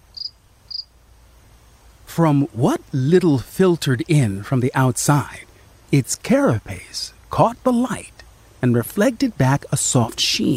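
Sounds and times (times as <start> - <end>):
black cricket chirping: 0.0 - 1.0
low quiet hum: 0.0 - 10.5
speech: 2.2 - 10.5.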